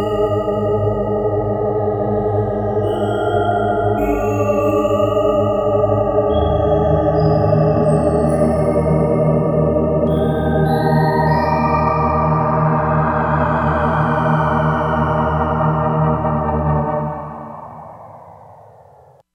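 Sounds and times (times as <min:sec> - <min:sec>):
synth wind choir: 0:00.2 - 0:19.2.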